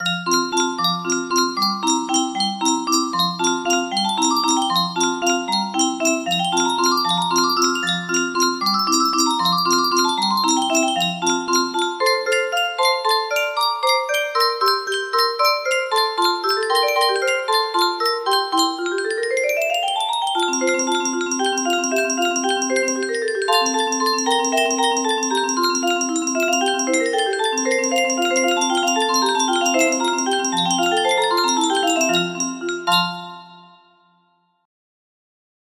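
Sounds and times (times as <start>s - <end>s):
waltz in F major: 0.0s - 34.0s.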